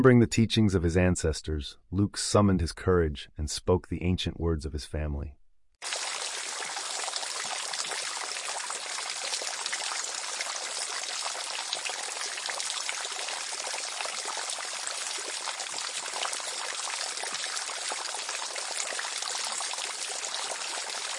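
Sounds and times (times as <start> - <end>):
speech: 0.0 - 6.0
river water trickling and splashing over stones: 5.8 - 21.1.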